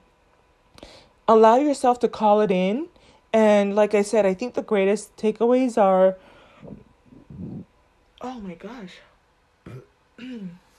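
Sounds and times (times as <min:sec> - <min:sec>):
speech: 0:01.3 - 0:06.8, 0:08.2 - 0:09.1, 0:09.7 - 0:10.6
belches: 0:09.6 - 0:10.0.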